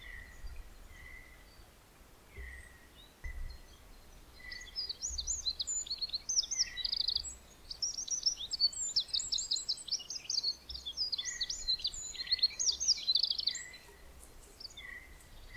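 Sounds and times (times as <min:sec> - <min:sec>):
Eurasian wren Troglodytes troglodytes singing: 0:00.0 - 0:15.5.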